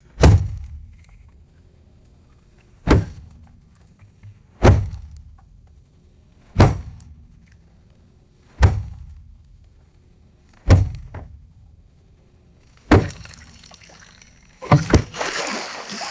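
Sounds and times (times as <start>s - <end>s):
dull thuds on wood in water: 2.9s - 3.3s, 4.6s - 5.2s, 6.6s - 7.0s, 10.7s - 11.4s, 12.8s - 16.0s.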